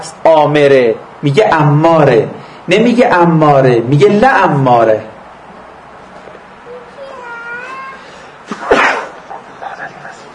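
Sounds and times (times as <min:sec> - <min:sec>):
speech: 0:00.3 - 0:05.1
human sneeze: 0:08.0 - 0:09.4.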